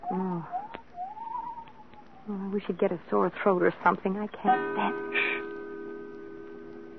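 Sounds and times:
owl hooting outside the house: 0.0s - 2.3s
speech: 2.6s - 5.3s.

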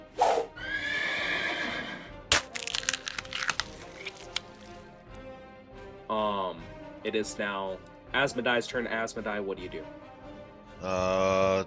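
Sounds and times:
horse giving a loud drawn-out whinny: 0.5s - 2.1s
sharp crack: 2.3s - 4.8s
speech: 7.1s - 10.0s, 10.8s - 11.6s.

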